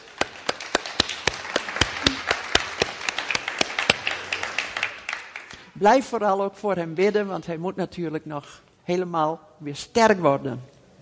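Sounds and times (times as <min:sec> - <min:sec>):
audience applauding: 0:00.0 - 0:05.7
speech: 0:05.8 - 0:10.7.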